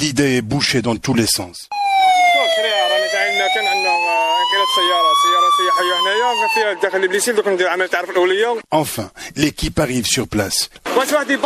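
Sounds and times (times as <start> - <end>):
speech: 0.0 - 11.4
emergency vehicle siren wailing on rescue truck and ambulances on the motorway near Blida: 1.7 - 7.5.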